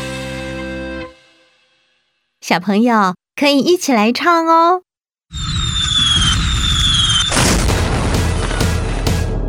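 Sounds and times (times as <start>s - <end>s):
speech: 2.5s - 5.5s
high whistling of fireworks: 5.3s - 7.5s
fireworks exploding: 5.4s - 9.3s.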